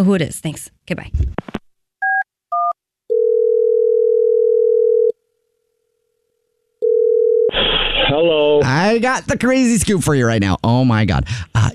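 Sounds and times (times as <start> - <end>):
speech: 0.0 - 1.5, 8.1 - 11.7
telephone dial tone: 2.6 - 5.1, 6.8 - 7.5
burst of noise: 7.5 - 8.6.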